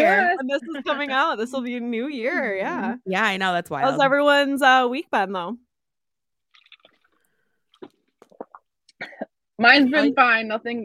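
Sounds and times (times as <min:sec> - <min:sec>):
speech: 0:00.0 - 0:05.6, 0:09.6 - 0:10.8
deep gulp and swallows of wine: 0:06.5 - 0:09.2.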